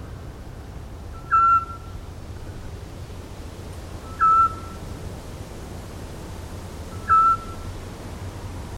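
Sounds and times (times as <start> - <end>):
Eurasian scops owl calling with clear brief piping whistles: 1.2 - 2.0, 4.0 - 4.8, 6.9 - 7.6.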